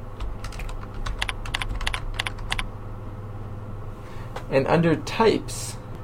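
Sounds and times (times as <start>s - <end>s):
typing a name into a form field on a computer keyboard: 0.2s - 2.6s
speech: 4.5s - 5.8s.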